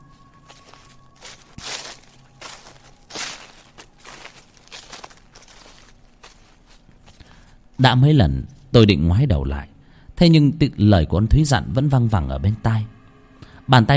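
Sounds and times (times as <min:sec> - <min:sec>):
footsteps crunching over fallen leaves: 0:00.0 - 0:07.7
faint steady noise: 0:00.0 - 0:13.9
speech: 0:07.8 - 0:12.9, 0:13.7 - 0:13.9.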